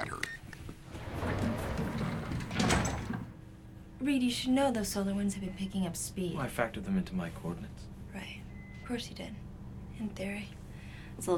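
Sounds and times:
elevator doors sliding with mechanical whir: 0:00.8 - 0:03.5
speech: 0:04.0 - 0:08.3, 0:08.9 - 0:09.4, 0:10.0 - 0:10.6, 0:11.2 - 0:11.3.

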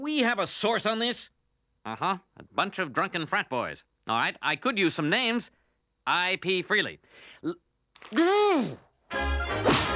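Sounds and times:
speech: 0:00.0 - 0:09.8
person yelling: 0:08.1 - 0:08.8.

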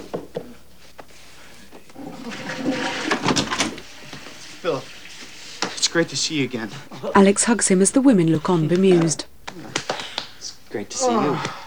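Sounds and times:
door hinges creaking: 0:02.2 - 0:03.9
speech: 0:04.6 - 0:04.9, 0:06.0 - 0:09.3, 0:10.8 - 0:11.6.

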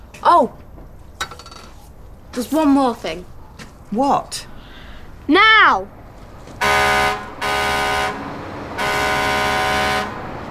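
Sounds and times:
low rumble: 0:00.0 - 0:07.5
speech: 0:00.2 - 0:00.6, 0:02.4 - 0:03.3, 0:03.9 - 0:04.4, 0:05.3 - 0:06.0
lorry horn blasts on the street: 0:06.6 - 0:10.4.

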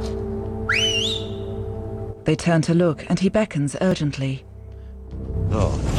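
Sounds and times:
person giving a rising two-note whistle to get attention: 0:00.7 - 0:01.5
speech: 0:02.3 - 0:04.5, 0:05.5 - 0:05.9.

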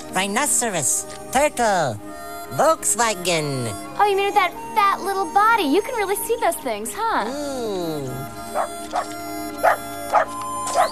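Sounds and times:
steady tonal background: 0:00.0 - 0:10.8
speech: 0:00.2 - 0:10.3
dog whimpering: 0:07.3 - 0:10.8
dog barking: 0:08.5 - 0:10.8.

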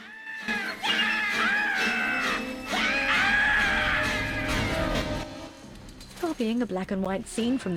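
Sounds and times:
cartoon character screaming: 0:00.0 - 0:04.6
speech: 0:06.4 - 0:07.7.

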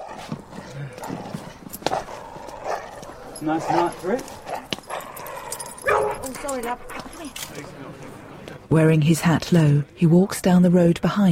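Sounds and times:
dog barking in a street at night: 0:01.9 - 0:07.2
speech: 0:03.4 - 0:04.4, 0:06.3 - 0:11.3.

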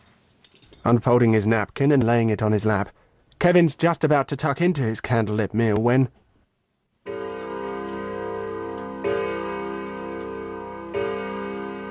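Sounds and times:
speech: 0:00.8 - 0:06.2
clock striking nine o'clock: 0:07.1 - 0:11.8.

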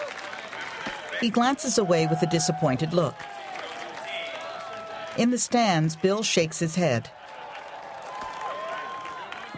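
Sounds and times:
crowd cheering at a ball game: 0:00.0 - 0:09.5
speech: 0:01.2 - 0:03.4, 0:05.2 - 0:07.2.

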